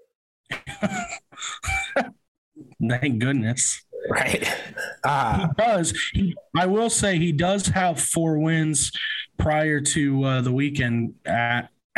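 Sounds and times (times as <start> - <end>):
person coughing after choking on food: 0.6 - 2.1, 4.1 - 5.5
speech: 2.8 - 11.9.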